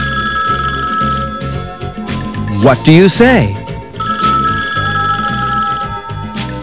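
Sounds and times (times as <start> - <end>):
telephone bell ringing: 0.0 - 2.0, 4.0 - 6.6
speech: 2.6 - 3.6.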